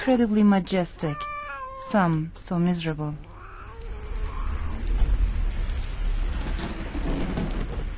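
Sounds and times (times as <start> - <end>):
speech: 0.0 - 3.3
heavy cascading rain pouring outdoors: 3.3 - 7.9.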